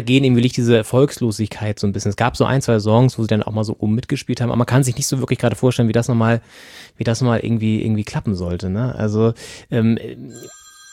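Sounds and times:
speech: 0.0 - 10.6
telephone ringing with high electronic tone: 10.3 - 10.9.

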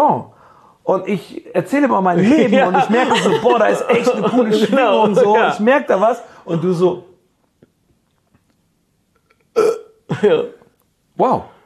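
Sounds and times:
speech: 0.0 - 7.1, 9.6 - 10.6, 11.2 - 11.5
laughter: 2.2 - 5.7
woman burping during a casual conversation: 9.3 - 10.7.

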